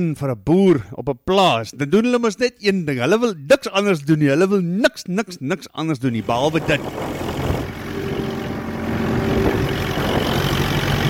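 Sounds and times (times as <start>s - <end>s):
speech: 0.0s - 7.3s
tractor engine droning while ploughing wet farm ground: 6.2s - 11.0s.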